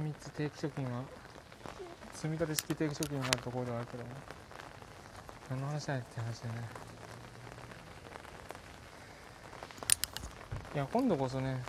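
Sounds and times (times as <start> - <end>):
steady rain pattering on an umbrella: 0.0 - 11.6
speech: 0.1 - 1.3, 2.2 - 4.5, 5.5 - 6.9, 10.8 - 11.6.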